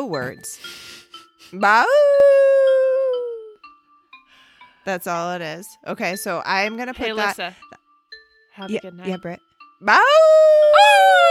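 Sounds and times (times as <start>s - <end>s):
speech: 0.0s - 0.9s, 1.5s - 2.3s, 4.8s - 7.7s, 8.6s - 11.2s
person imitating a dog howl: 1.8s - 3.5s, 10.0s - 11.2s.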